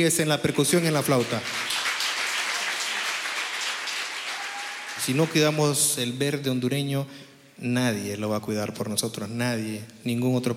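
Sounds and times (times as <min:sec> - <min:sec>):
speech: 0:00.0 - 0:01.8, 0:05.0 - 0:10.5
crowd applauding: 0:00.2 - 0:05.9.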